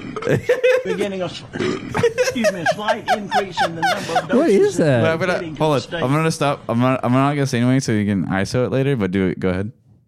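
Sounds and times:
loud croaking drawn-out burps with wobbling pitch: 0.0s - 0.5s, 1.5s - 2.2s
faint chuckling: 0.0s - 4.7s
speech: 0.2s - 9.8s.

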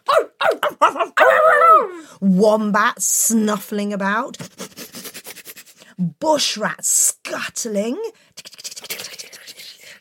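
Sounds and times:
child imitating dingo barking: 0.0s - 2.0s
speech: 2.2s - 4.6s, 6.0s - 8.2s.

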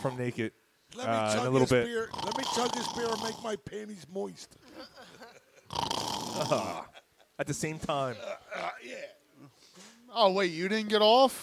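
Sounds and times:
speech: 0.0s - 9.5s, 10.1s - 11.4s
person imitating snoring: 2.0s - 3.5s, 5.7s - 6.9s.

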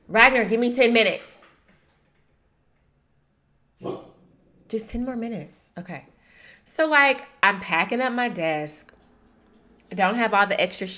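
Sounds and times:
speech: 0.1s - 1.4s, 4.7s - 6.1s, 6.7s - 8.9s, 9.9s - 10.9s
puppy letting out a short sharp bark: 3.8s - 4.2s.

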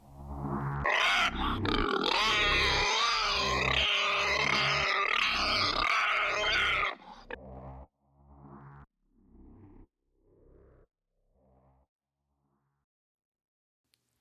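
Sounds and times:
pig wallowing in mud on New England farmland grunting: 0.8s - 7.4s.

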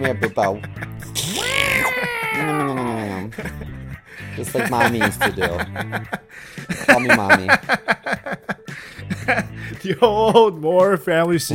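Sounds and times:
laughter: 0.0s - 3.7s, 4.4s - 9.5s
speech: 0.0s - 3.7s, 4.4s - 11.5s
cat meowing: 1.3s - 3.1s.

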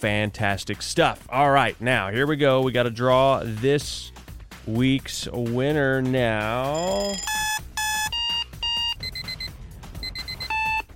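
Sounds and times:
speech: 0.0s - 7.4s
electronic alarm clock beeping: 6.7s - 10.9s.

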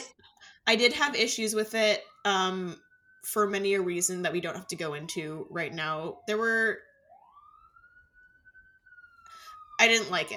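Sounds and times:
speech: 0.7s - 6.9s, 9.8s - 10.3s
siren wailing outside: 0.7s - 10.3s.

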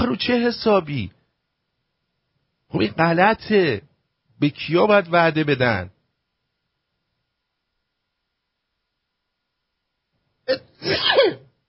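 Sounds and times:
speech: 0.0s - 1.2s, 2.7s - 6.0s, 10.5s - 11.4s
person sneezing: 10.5s - 11.6s.

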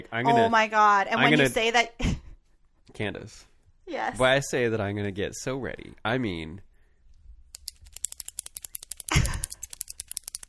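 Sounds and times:
speech: 0.0s - 2.1s, 3.0s - 6.7s
pen clicking: 7.6s - 10.4s.

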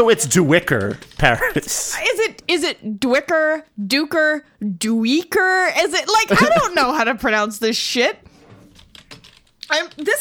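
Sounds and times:
speech: 0.0s - 8.3s, 9.7s - 10.1s
typing on a computer keyboard: 0.6s - 1.4s, 8.6s - 10.1s.

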